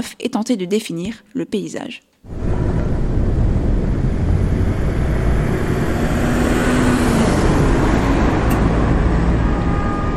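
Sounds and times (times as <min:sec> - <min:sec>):
speech: 0:00.0 - 0:02.4
dense city street traffic of passing cars and engines: 0:02.3 - 0:10.1.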